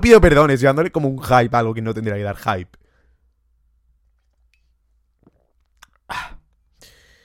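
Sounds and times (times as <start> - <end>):
speech: 0.0 - 2.8
person drinking water with a loud throaty gulp: 5.2 - 6.6
breathy exhale: 6.1 - 7.2.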